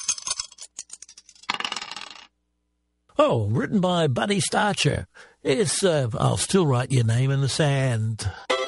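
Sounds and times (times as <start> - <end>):
dice clattering across a hard surface: 0.0 - 2.3
speech: 3.2 - 8.5.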